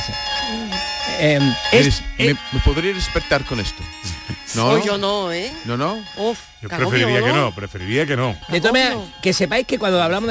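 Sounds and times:
bass clarinet honking a low reed tone: 0.0 - 6.0
speech: 0.0 - 10.3.

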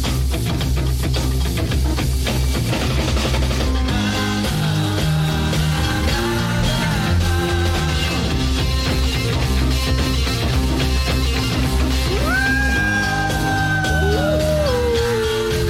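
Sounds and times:
rock music: 0.0 - 15.6
wolves howling: 12.1 - 15.6.

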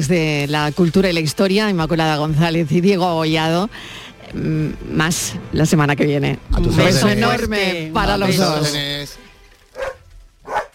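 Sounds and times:
speech: 0.0 - 9.2
dog barking at a house: 9.7 - 10.7.

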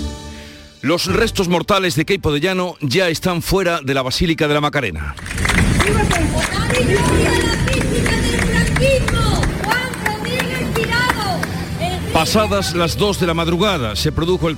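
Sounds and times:
speech: 0.8 - 7.8, 12.2 - 14.5
scattered clapping: 5.2 - 12.5
large crowd shouting outside a church at night: 5.3 - 13.0.

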